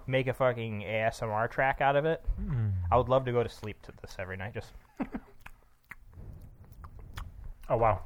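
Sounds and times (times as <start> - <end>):
speech: 0.1 - 5.3, 7.7 - 8.0
chewing spicy food: 5.2 - 8.0
steady wet mouth sound: 5.3 - 7.7
sharp crunchy bites: 5.4 - 7.8.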